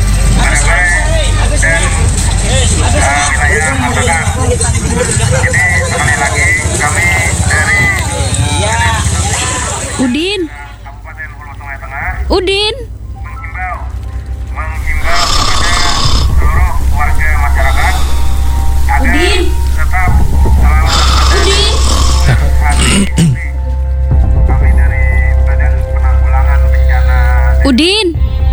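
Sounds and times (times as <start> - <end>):
steady low hum: 0.0 - 8.2, 10.0 - 28.5
busy chatter: 0.0 - 28.5
person snoring with rasping snorts and grunts: 14.8 - 23.6.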